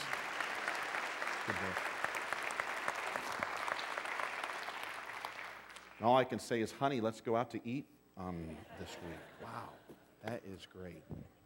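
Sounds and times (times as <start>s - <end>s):
audience applause: 0.0s - 6.0s
speech: 1.5s - 1.9s, 6.0s - 11.4s.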